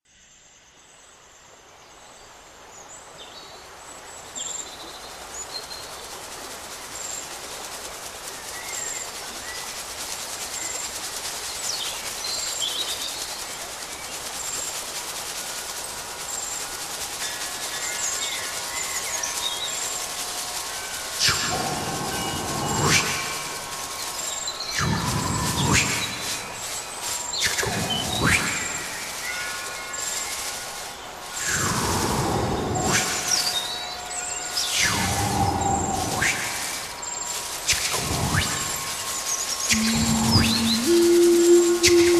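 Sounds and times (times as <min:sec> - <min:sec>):
shamanic music: 0:13.2 - 0:42.1
mystery bird calling: 0:21.2 - 0:33.8, 0:34.6 - 0:42.1.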